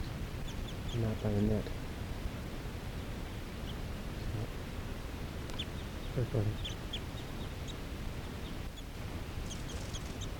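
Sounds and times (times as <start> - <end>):
steady hiss: 0.0 - 10.3
speech: 0.9 - 1.8, 6.2 - 6.8
crossbills calling in trees: 5.5 - 7.8, 8.4 - 10.3.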